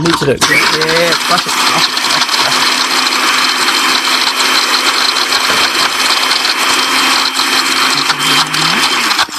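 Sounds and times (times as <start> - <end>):
speech: 0.0 - 2.6
blender running hard: 0.0 - 9.3.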